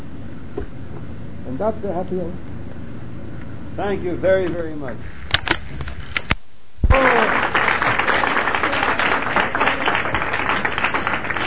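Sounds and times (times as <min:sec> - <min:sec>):
speech: 0:01.6 - 0:02.5, 0:03.8 - 0:05.2
audience applause after a speech: 0:06.9 - 0:11.4.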